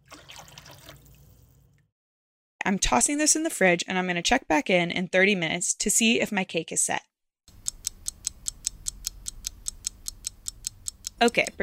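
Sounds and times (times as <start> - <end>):
water sweetened with sugar and agar-agar poured into a circular cake mold: 0.0 - 1.8
speech: 2.6 - 7.1, 11.2 - 11.6.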